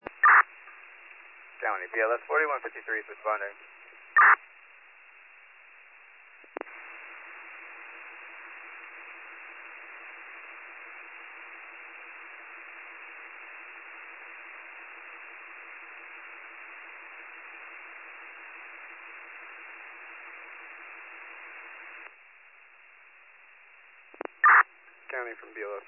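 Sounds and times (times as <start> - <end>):
radio static over a dispatch channel: 0.0 - 4.4, 6.4 - 22.2, 24.1 - 25.8
speech: 1.7 - 4.5
clicks of dispatch channel keying open and closed: 24.1 - 24.6.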